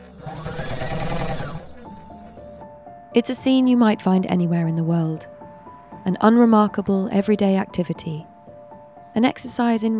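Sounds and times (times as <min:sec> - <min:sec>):
sewing machine running a straight stitch along a folded hem: 0:00.0 - 0:02.5
speech: 0:03.2 - 0:05.3, 0:06.0 - 0:08.3, 0:09.2 - 0:09.9.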